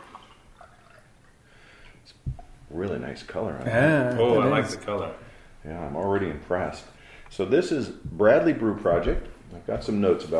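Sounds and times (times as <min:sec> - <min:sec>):
beer pouring from a can into a glass: 0:00.0 - 0:01.4
speech: 0:02.7 - 0:10.3.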